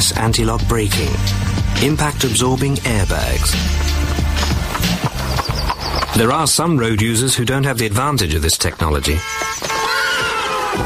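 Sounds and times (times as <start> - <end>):
speech: 0.0 - 5.0, 6.2 - 10.1
horse neighing: 3.1 - 6.6, 9.7 - 10.8.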